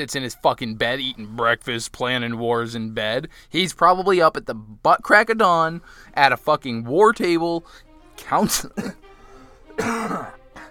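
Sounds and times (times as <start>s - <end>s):
speech: 0.0s - 9.0s, 9.8s - 10.4s
loud raspy cough: 8.5s - 9.0s, 9.8s - 10.6s.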